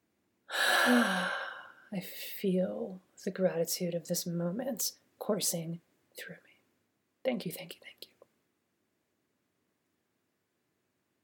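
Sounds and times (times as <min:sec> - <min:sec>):
deep breath: 0:00.5 - 0:01.9
speech: 0:00.9 - 0:01.2, 0:01.9 - 0:06.5, 0:07.2 - 0:08.1.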